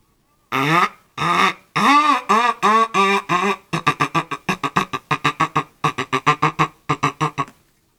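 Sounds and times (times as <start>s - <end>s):
person imitating duck quacks: 0.5s - 7.6s.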